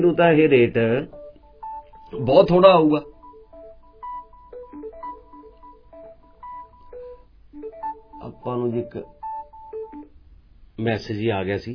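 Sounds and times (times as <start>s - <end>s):
speech: 0.0s - 1.2s, 2.1s - 3.1s, 8.2s - 9.2s, 10.8s - 11.7s
electronic ringtone of a phone with an incoming call: 1.1s - 10.1s.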